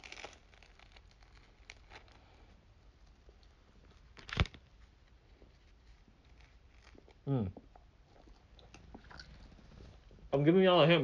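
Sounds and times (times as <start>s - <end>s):
loud crunchy bites into crisp food: 0.0s - 2.5s, 3.2s - 4.6s
chewing food close to the microphone: 6.0s - 9.9s
speech: 7.3s - 7.6s, 10.3s - 11.0s.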